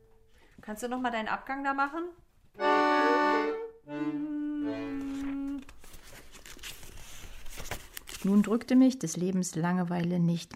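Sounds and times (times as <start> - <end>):
speech: 0.7 - 2.8, 3.4 - 4.3, 8.2 - 10.5
person singing sustained notes: 2.8 - 5.7
book pages being leafed through: 4.9 - 8.9.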